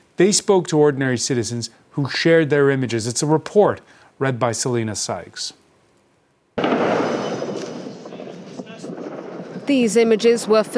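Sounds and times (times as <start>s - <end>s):
speech: 0.2s - 5.6s, 9.7s - 10.7s
missile strike blast on a city street: 6.6s - 9.9s.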